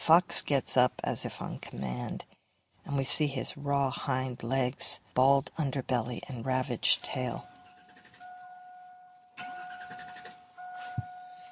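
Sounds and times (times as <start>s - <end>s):
speech: 0.0s - 7.5s
old broken-down pickup truck engine cranking and starting: 9.4s - 11.0s.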